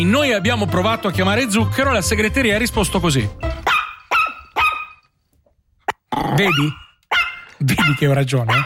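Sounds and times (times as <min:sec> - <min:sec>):
speech: 0:00.0 - 0:03.5, 0:06.4 - 0:06.8, 0:07.6 - 0:08.6
small dog barking and growling: 0:03.6 - 0:05.0, 0:05.9 - 0:08.6.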